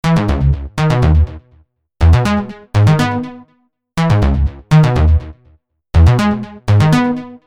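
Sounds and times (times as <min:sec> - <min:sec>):
bass loop in C sharp minor: 0:00.0 - 0:03.2, 0:04.0 - 0:05.4, 0:06.0 - 0:07.0.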